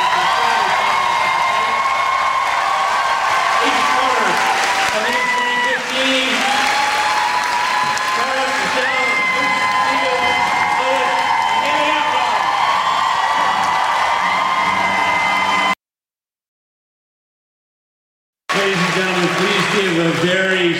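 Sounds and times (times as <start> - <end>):
crowd whoops and shouts: 0.0 - 15.8
large indoor convention crowd applauding and cheering: 0.0 - 15.8, 18.5 - 20.7.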